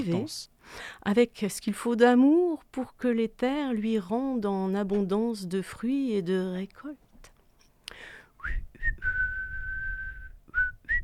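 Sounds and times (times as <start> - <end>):
speech: 0.0 - 7.0
person whistling a simple tune clumsily: 8.4 - 11.0.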